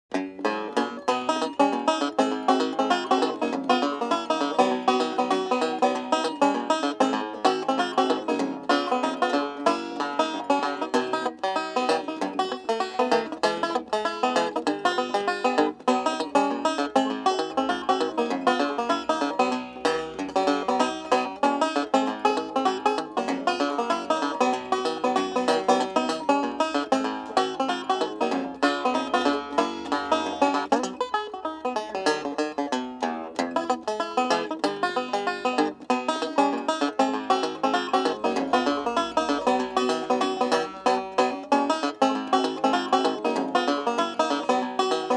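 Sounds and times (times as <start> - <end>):
happy ragtime banjo rag: 0.1 - 45.1.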